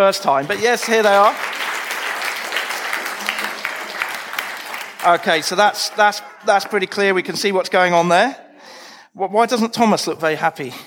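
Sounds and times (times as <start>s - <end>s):
speech: 0.0s - 1.6s, 5.0s - 8.4s, 9.2s - 10.8s
audience crowd applauding: 0.3s - 7.0s.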